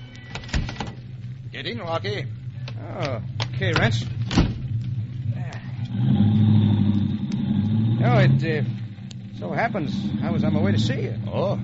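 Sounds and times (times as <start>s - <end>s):
speech: 1.6s - 4.4s, 6.0s - 6.5s, 8.0s - 8.8s, 9.4s - 11.6s
hired car engine revving while driving out of the city: 4.0s - 11.6s.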